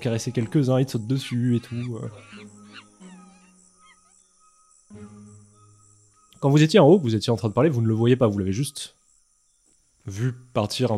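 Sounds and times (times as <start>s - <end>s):
speech: 0.0s - 2.5s, 6.4s - 9.0s, 10.0s - 10.9s
monkeys screeching and chattering: 0.5s - 4.3s.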